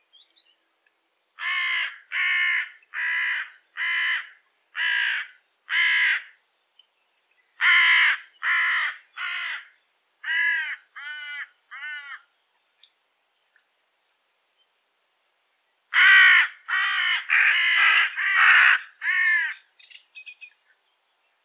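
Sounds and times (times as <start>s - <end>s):
carrion crow Corvus corone cawing: 1.4s - 6.3s, 7.6s - 12.3s, 16.0s - 19.6s.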